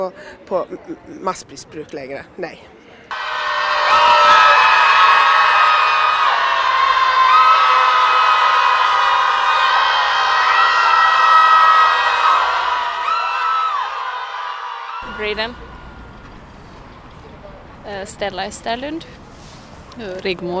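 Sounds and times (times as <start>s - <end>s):
speech: 0.0s - 2.8s, 15.2s - 15.6s, 17.9s - 19.2s, 20.0s - 20.5s
large demonstration crowd screaming together in anger: 3.1s - 15.3s.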